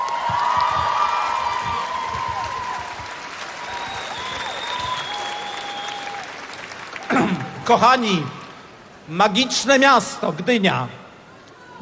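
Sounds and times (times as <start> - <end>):
applause from a huge outdoor festival crowd on a city square in Gdynia: 0.0 - 8.3
speech: 7.2 - 8.4, 9.1 - 11.0.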